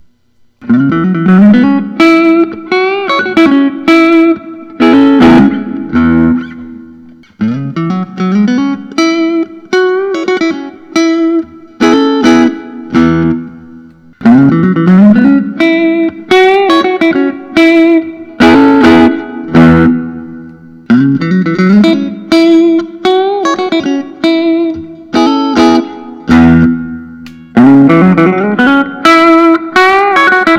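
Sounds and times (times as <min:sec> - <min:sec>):
Suhr Modern T Pro electric guitar: 0:00.0 - 0:30.5.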